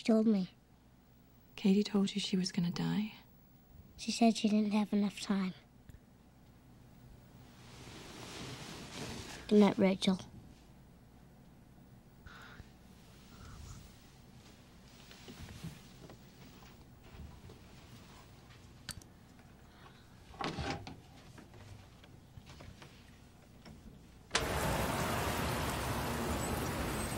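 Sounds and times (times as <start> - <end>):
speech: 0.0 - 0.6, 1.6 - 3.2, 4.0 - 5.6, 9.5 - 10.3
light rain pattering in a film scene: 24.3 - 27.1
loud dense downpour rushing: 24.3 - 27.1.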